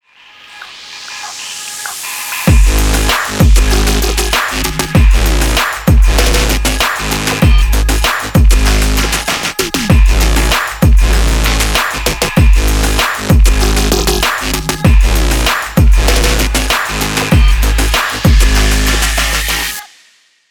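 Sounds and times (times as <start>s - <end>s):
hi-tech presentation music: 0.2s - 19.8s.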